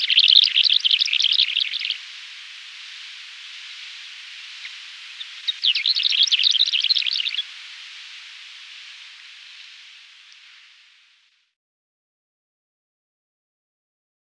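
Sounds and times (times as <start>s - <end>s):
lesser short-toed lark song: 0.0s - 10.8s
faint hiss: 0.0s - 11.6s.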